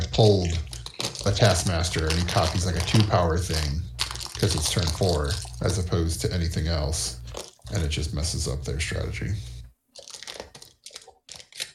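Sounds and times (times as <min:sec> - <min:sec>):
plastic bag crinkling as it is opened: 0:00.1 - 0:05.8, 0:07.2 - 0:08.0, 0:10.0 - 0:11.7
speech: 0:00.2 - 0:09.5.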